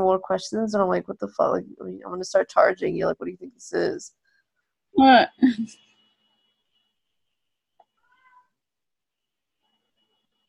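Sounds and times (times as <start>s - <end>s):
speech: 0.0s - 4.2s, 5.0s - 5.9s
pet cat meowing outside a room: 8.0s - 8.6s.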